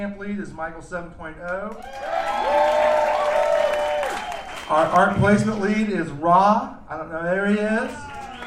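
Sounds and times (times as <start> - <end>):
speech: 0.0 - 2.8, 4.7 - 8.1
crowd applauding for event team leads: 1.7 - 5.6, 7.8 - 8.4.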